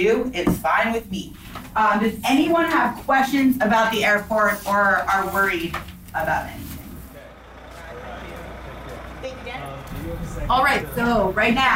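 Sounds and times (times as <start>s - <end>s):
speech: 0.0s - 6.7s, 10.4s - 11.7s
large bus idling at the bottom of the stairs: 0.8s - 11.7s
faint voices murmuring: 7.1s - 11.7s.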